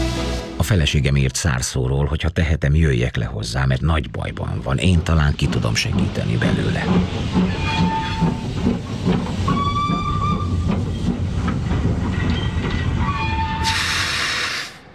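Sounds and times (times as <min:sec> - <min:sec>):
speech: 0:00.6 - 0:08.8
steam train rumbling: 0:03.9 - 0:14.9
steam train whistle blasts: 0:13.0 - 0:14.8
loud burst of hissing steam: 0:13.6 - 0:14.9.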